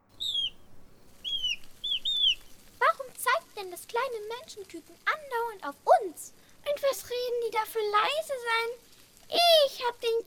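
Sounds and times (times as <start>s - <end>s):
pair of blackbirds giving thin high whistled calls in a garden: 0.1s - 0.6s, 1.2s - 2.7s
speech: 3.6s - 10.2s.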